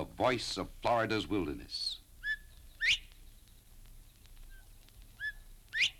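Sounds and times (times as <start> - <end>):
quiet background hiss: 0.0 - 5.9
speech: 0.2 - 2.0
Florida subspecies northern bobwhite whistle in Florida: 2.3 - 3.1, 5.2 - 5.9.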